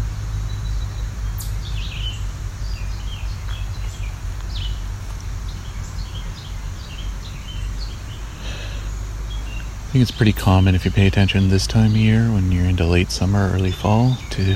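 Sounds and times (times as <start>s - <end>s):
low rumbling noise: 0.0s - 14.5s
chipmunk chipping: 0.7s - 14.5s
speech: 10.0s - 14.5s.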